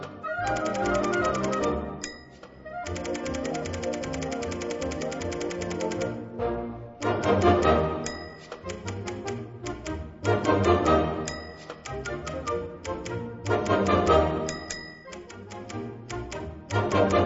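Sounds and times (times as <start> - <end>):
lively orchestral music played by a full band: 0.0 - 3.5, 6.0 - 17.2
typewriter carriage return: 0.4 - 1.7, 2.9 - 6.1
typewriter keys clacking: 0.4 - 6.2, 7.4 - 10.6, 11.3 - 16.9
typewriter bell dings: 0.5 - 6.1, 8.1 - 9.4, 11.3 - 12.0, 14.5 - 15.4.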